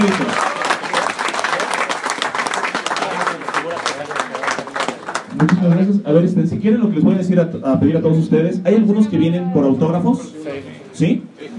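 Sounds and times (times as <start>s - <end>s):
audience applause at the close of a presentation: 0.0s - 5.9s
speech: 5.4s - 11.5s.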